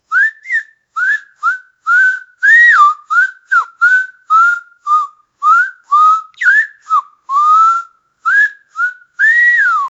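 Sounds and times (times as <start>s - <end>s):
14-year-old girl whistling: 0.1s - 9.9s.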